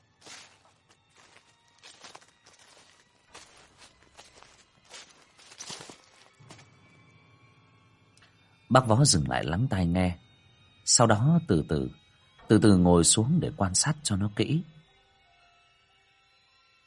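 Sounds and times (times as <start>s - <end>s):
footsteps rustling through dry leaves in rural undergrowth: 0.0s - 6.7s
speech: 8.7s - 10.2s, 10.9s - 14.8s.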